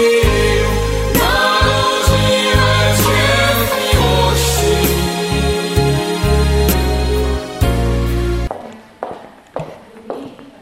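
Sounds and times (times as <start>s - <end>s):
loud sustained music: 0.0s - 8.5s
footsteps in a steady walking rhythm: 8.5s - 10.6s.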